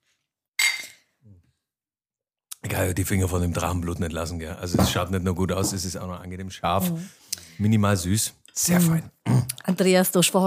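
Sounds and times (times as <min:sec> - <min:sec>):
beer or water glasses clinking in a toast: 0:00.6 - 0:01.1
speech: 0:02.8 - 0:10.4.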